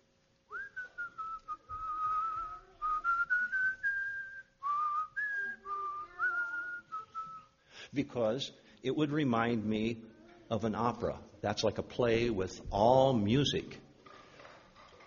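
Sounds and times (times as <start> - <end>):
person whistling a melodic tune: 0.5 - 7.6
speech: 7.9 - 13.8.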